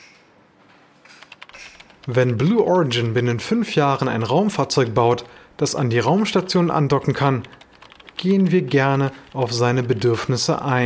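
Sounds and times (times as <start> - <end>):
typing on a keyboard: 1.1 - 3.2, 6.2 - 10.3
speech: 2.0 - 7.6, 8.2 - 10.8.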